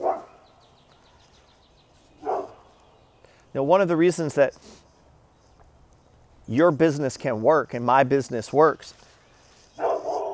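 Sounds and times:
dogs barking: 0:00.0 - 0:00.5, 0:02.2 - 0:02.6, 0:09.8 - 0:10.3
speech: 0:03.6 - 0:04.8, 0:06.5 - 0:09.1.

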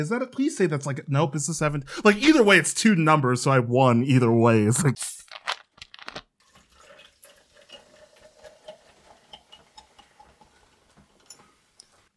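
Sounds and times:
speech: 0:00.0 - 0:05.2
Diet Coke poured from a 2-liter plastic bottle: 0:05.2 - 0:11.5.

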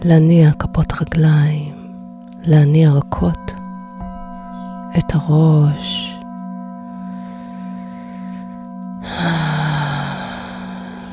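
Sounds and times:
speech: 0:00.0 - 0:01.8, 0:02.4 - 0:03.6, 0:04.9 - 0:06.2
soft steady humming drone: 0:00.0 - 0:11.1
deep airy breath in and out: 0:06.9 - 0:11.1.

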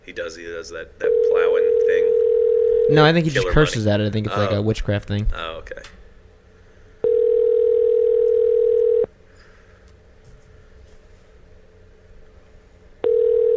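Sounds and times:
speech: 0:00.1 - 0:06.0
telephone ringback tone while placing a call: 0:01.0 - 0:03.0, 0:07.0 - 0:09.1, 0:13.0 - 0:13.5.

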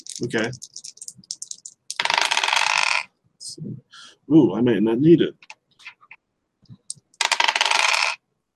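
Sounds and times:
dice rolling on a table during a tabletop role-playing game: 0:00.0 - 0:03.1, 0:07.1 - 0:08.2
speech: 0:00.2 - 0:00.8, 0:03.6 - 0:05.5.

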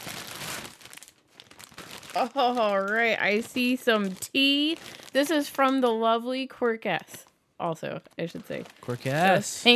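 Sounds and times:
package paper wrapping ripped open by hand: 0:00.0 - 0:05.5, 0:08.4 - 0:09.7
speech: 0:02.1 - 0:09.7.

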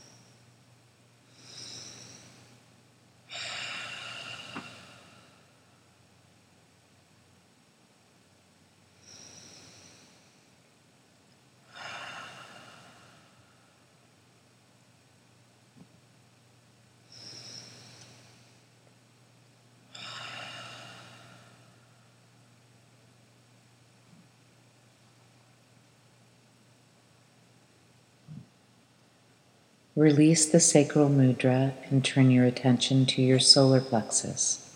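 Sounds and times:
faint steady hum: 0:00.0 - 0:34.7
throaty hissing Ujjayi breaths during a meditation: 0:01.3 - 0:02.6, 0:03.3 - 0:05.5, 0:09.0 - 0:10.6, 0:11.6 - 0:13.6, 0:17.1 - 0:18.6, 0:19.9 - 0:21.8
speech: 0:30.0 - 0:34.6.

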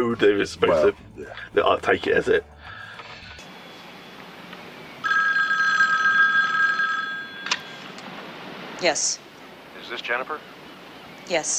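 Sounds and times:
speech: 0:00.1 - 0:02.5, 0:08.8 - 0:09.2, 0:09.9 - 0:10.5, 0:11.3 - 0:11.5
telephone ringing with a bright electronic trill: 0:02.9 - 0:08.0.

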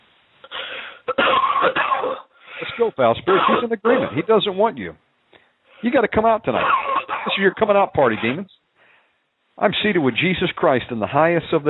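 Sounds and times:
deep rasping cough with gravelly throat-clearing: 0:00.5 - 0:04.3, 0:06.5 - 0:08.5
speech: 0:02.8 - 0:05.0, 0:05.8 - 0:08.6, 0:09.6 - 0:11.6.

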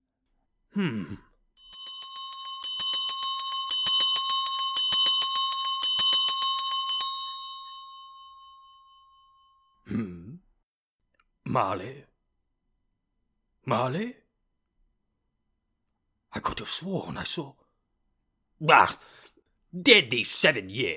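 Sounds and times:
speech: 0:00.7 - 0:01.8, 0:11.6 - 0:12.1, 0:13.7 - 0:14.2, 0:16.4 - 0:17.6, 0:18.6 - 0:20.9
low throat-clearing grunt: 0:00.8 - 0:01.3, 0:09.9 - 0:10.4
disused hanging bell swinging and ringing: 0:01.6 - 0:09.4.

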